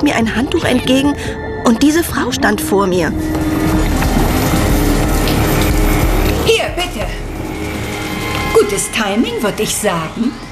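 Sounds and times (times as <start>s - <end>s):
speech: 0.0s - 3.8s, 8.7s - 10.4s
water pouring from one bucket into another: 3.2s - 10.5s.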